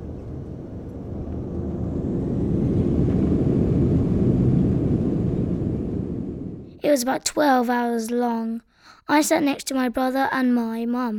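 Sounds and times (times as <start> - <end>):
airplane cabin engine noise on a flight to England: 0.0 - 6.7
speech: 6.9 - 11.1.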